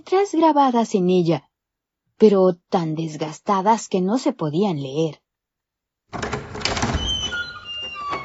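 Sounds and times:
speech: 0.0s - 1.5s, 2.2s - 5.2s, 6.1s - 6.4s
old sturdy wooden café door pushed open: 6.1s - 8.2s.

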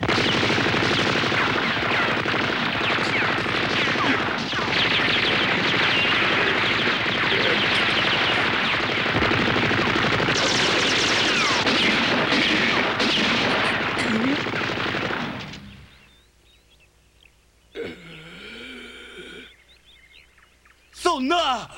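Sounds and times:
guns fired in rapid bursts: 0.0s - 16.0s.

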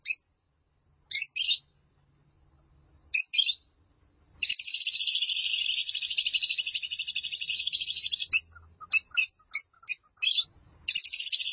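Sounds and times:
lovebird calling with short squeaky chirps: 0.0s - 0.2s, 1.1s - 1.7s, 3.2s - 3.6s, 4.4s - 11.5s
lovebird steady high-pitched chatter: 0.0s - 0.3s, 1.1s - 1.7s, 3.1s - 3.6s, 4.4s - 11.5s.

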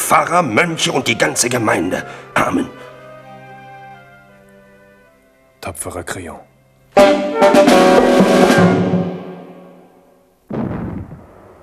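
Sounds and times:
speech: 0.1s - 2.8s, 5.7s - 9.1s
small cannons firing salute shots at an outdoor garden festivity: 10.5s - 11.6s.

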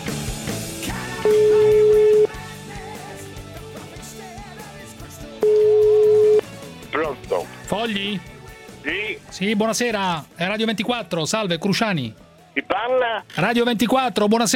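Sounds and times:
telephone ringing while a listener is being called: 1.2s - 2.3s, 5.4s - 6.4s
speech: 7.9s - 14.5s.

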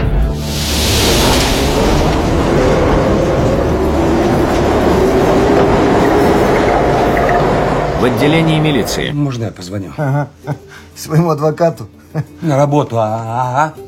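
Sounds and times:
underground train pulling away through a tunnel: 0.4s - 9.2s
speech: 8.0s - 13.8s.

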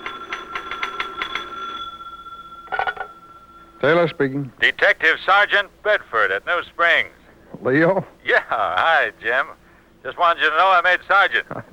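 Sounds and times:
telephone bell ringing with a rapid rattling trill in an FBI field office: 0.0s - 4.8s
speech: 3.8s - 11.7s.

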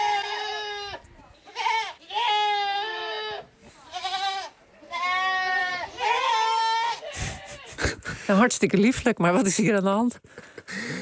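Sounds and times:
goats roaming free on Sint Eustatius bleating: 0.0s - 7.8s
speech: 8.3s - 10.5s.

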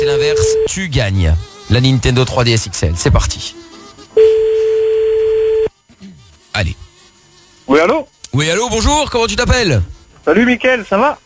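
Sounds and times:
telephone tone as a call is placed to a contest winner: 0.0s - 0.7s, 4.2s - 5.7s
speech: 0.3s - 3.6s, 6.6s - 6.8s, 7.7s - 11.2s.

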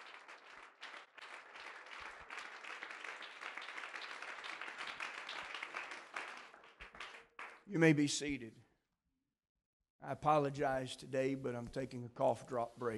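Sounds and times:
church congregation clapping hands during a worship service: 0.0s - 7.8s
speech: 7.7s - 8.6s, 10.1s - 12.9s.

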